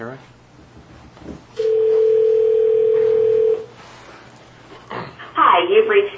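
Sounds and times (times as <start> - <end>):
telephone dial tone: 1.6 - 3.7.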